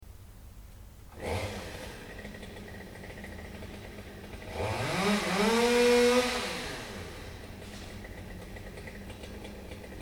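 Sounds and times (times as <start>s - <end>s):
chainsaw: 1.1s - 10.0s.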